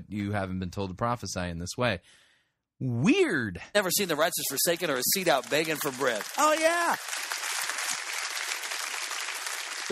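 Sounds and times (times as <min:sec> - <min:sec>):
speech: 0:00.1 - 0:07.4
audience applause of many hands clapping: 0:04.5 - 0:09.9.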